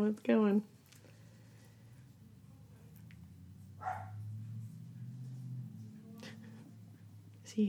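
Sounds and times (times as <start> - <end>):
speech: 0.0 - 0.8
steady low hum: 0.0 - 7.6
dog barking at someone arriving home: 3.8 - 4.2.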